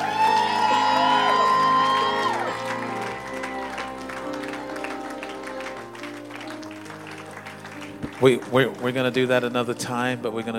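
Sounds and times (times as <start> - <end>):
whoops and cheering shouts: 0.0 - 5.6
church audience applause: 0.0 - 10.5
speech: 8.2 - 10.5.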